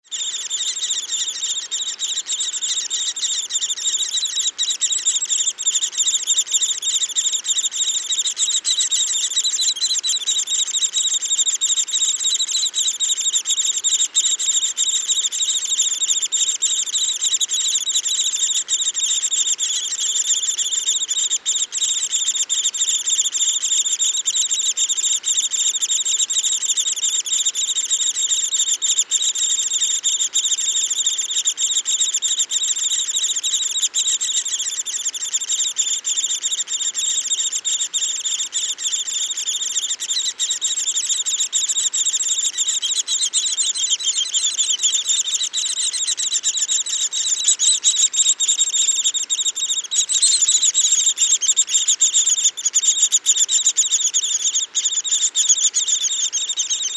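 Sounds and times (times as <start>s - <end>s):
lesser spotted woodpecker: 0.1s - 56.9s.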